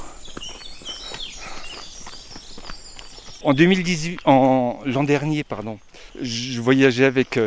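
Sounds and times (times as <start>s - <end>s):
birds singing: 0.0s - 7.4s
footsteps crunching on a walking path: 0.0s - 7.4s
speech: 3.4s - 7.4s.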